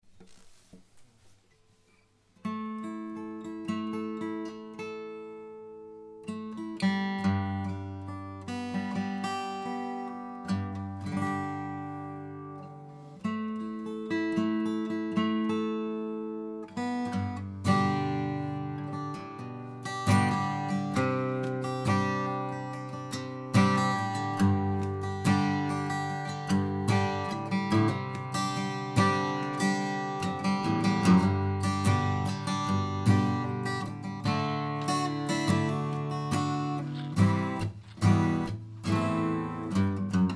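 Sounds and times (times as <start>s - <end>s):
flatpicked nylon-string guitar: 2.4s - 40.3s.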